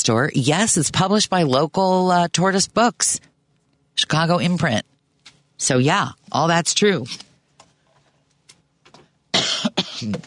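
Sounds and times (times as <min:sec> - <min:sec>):
speech: 0:00.0 - 0:03.3, 0:04.0 - 0:04.9, 0:05.6 - 0:07.3, 0:10.0 - 0:10.2
loud cough: 0:09.3 - 0:10.2.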